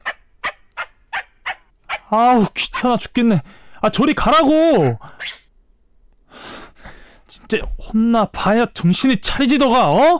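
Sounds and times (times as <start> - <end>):
small dog yapping: 0.0 - 2.1
speech: 2.1 - 5.4, 7.5 - 10.1.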